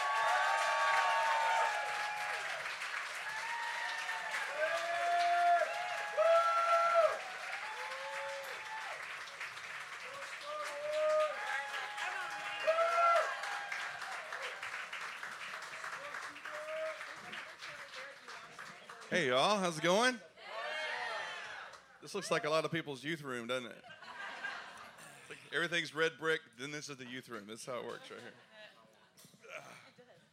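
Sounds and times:
crowd whooping and cheering: 0.0s - 9.4s, 10.0s - 14.9s
large crowd applauding: 0.0s - 20.1s
speech: 19.2s - 20.3s, 22.0s - 24.0s, 25.5s - 28.5s.

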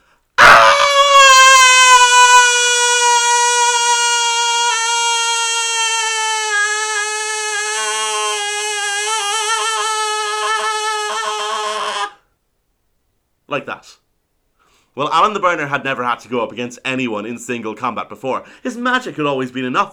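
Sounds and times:
human voice imitating a fairy creature's scream of terror: 0.4s - 12.2s
speech: 15.0s - 19.9s.

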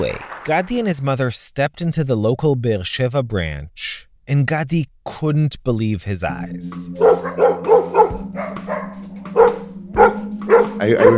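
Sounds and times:
speech: 0.0s - 8.7s, 10.6s - 11.1s
steady low hum: 6.3s - 11.1s
many dogs barking in a shelter: 7.0s - 11.1s.

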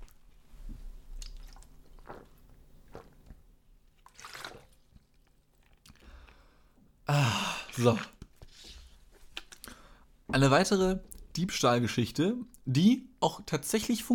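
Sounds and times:
person sipping and swallowing water: 0.7s - 3.4s, 4.1s - 6.5s, 7.1s - 9.9s
speech: 7.8s - 8.2s, 10.4s - 14.1s.

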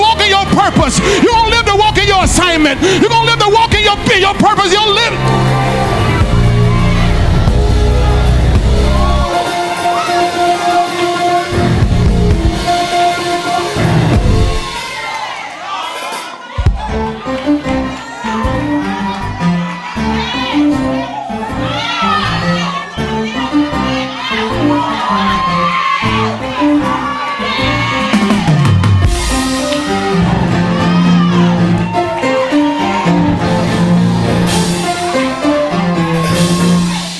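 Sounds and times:
pastor preaching a sermon: 0.0s - 5.3s
large audience shouting and cheering during a sermon: 0.0s - 37.1s
speech: 2.2s - 5.9s.

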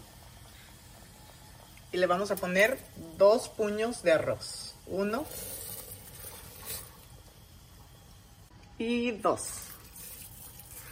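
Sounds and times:
pot of seasoned water at a rolling boil on the stove: 0.0s - 10.9s
speech: 1.9s - 5.6s, 8.8s - 9.6s.

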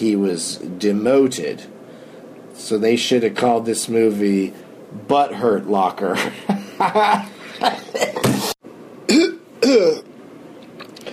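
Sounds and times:
speech: 0.0s - 1.8s, 2.6s - 8.0s, 9.1s - 10.1s
person coughing: 9.1s - 10.1s.

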